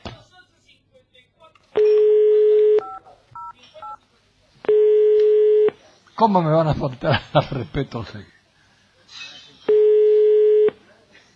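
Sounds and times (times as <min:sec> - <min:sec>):
faint noise: 0:00.0 - 0:11.3
longer steady telephone tones: 0:01.8 - 0:04.0, 0:04.7 - 0:05.8, 0:09.7 - 0:10.8
speech: 0:06.2 - 0:08.3.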